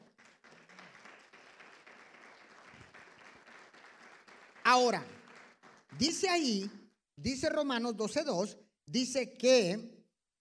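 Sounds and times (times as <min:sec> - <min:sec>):
large audience applauding: 0:00.0 - 0:06.6
speech: 0:04.7 - 0:05.1, 0:06.0 - 0:09.9.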